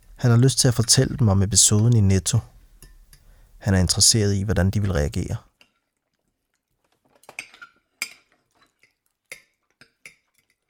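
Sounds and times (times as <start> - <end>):
speech: 0.2 - 2.6, 3.6 - 5.5
cutlery and dishes clinking at a dinner table: 7.1 - 10.6.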